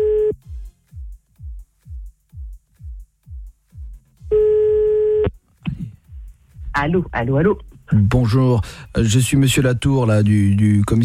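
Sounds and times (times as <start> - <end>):
telephone line tones as a call is placed: 0.0 - 0.4, 4.3 - 5.3
speech: 6.8 - 11.0.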